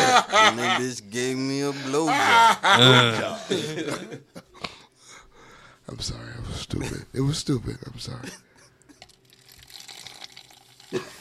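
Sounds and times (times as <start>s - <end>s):
laughter: 0.0s - 1.0s, 1.8s - 4.6s
speech: 0.2s - 4.3s, 5.9s - 8.5s, 10.9s - 11.1s
liquid being poured by a man: 8.9s - 11.1s.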